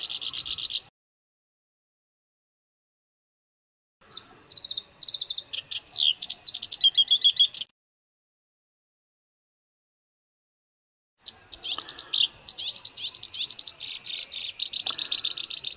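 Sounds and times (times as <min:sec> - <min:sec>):
black-browed reed warbler song: 0:00.0 - 0:00.9, 0:04.0 - 0:07.7, 0:11.2 - 0:15.7.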